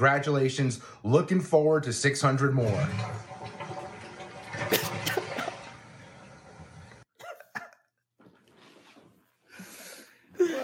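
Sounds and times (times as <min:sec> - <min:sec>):
speech: 0:00.0 - 0:03.3
toilet flushing with a loud rush of water: 0:00.8 - 0:07.1.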